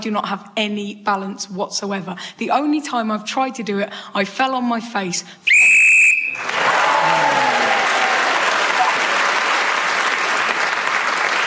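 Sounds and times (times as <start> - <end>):
speech: 0.0 - 5.7
loud shrill whistle blast ending the round: 5.5 - 6.5
crowd applause: 6.2 - 11.4.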